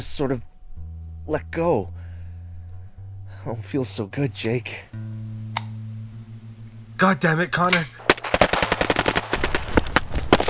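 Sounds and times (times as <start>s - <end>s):
speech: 0.0s - 0.6s, 1.3s - 2.0s, 3.4s - 5.3s, 7.0s - 8.0s
low rumble: 0.0s - 7.0s
heavy blasts: 7.7s - 10.4s
rapid gunfire: 7.7s - 10.4s.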